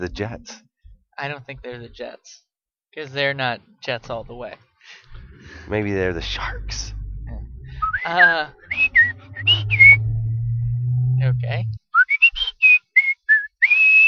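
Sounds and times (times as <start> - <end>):
speech: 0.0 - 7.0, 8.0 - 10.0, 11.2 - 11.8
low steady hum: 4.0 - 11.8
person whistling a short bright melody: 7.8 - 10.3, 11.9 - 14.0.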